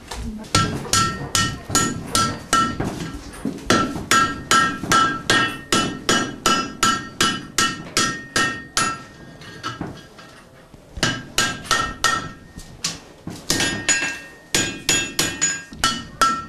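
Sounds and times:
blacksmith's hammer striking iron on an anvil in a smithy: 0:00.5 - 0:03.1, 0:03.7 - 0:09.8, 0:11.0 - 0:12.5, 0:13.5 - 0:16.4.

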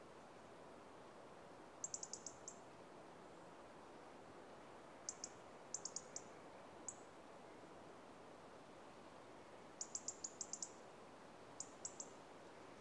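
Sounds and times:
steady low hiss: 0:00.0 - 0:12.7
European robin Erithacus rubecula high ticking calls: 0:01.8 - 0:02.6, 0:05.1 - 0:07.0, 0:09.8 - 0:10.8, 0:11.6 - 0:12.2.

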